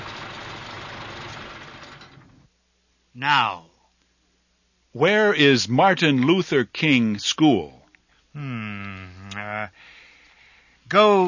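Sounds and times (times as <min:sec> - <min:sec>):
car engine idling with a low rumbling hum: 0:00.0 - 0:02.5
speech: 0:03.2 - 0:03.7, 0:05.0 - 0:07.8, 0:08.4 - 0:08.9, 0:10.9 - 0:11.2.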